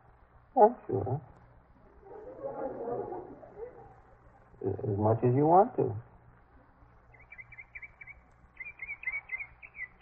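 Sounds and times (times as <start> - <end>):
speech: 0.6 - 1.4, 4.6 - 6.1
bird calling at dawn: 7.1 - 9.9.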